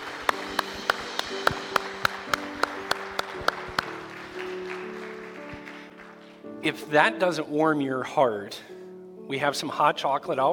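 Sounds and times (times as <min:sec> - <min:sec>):
people clapping: 0:00.0 - 0:06.4
speech: 0:06.6 - 0:10.5.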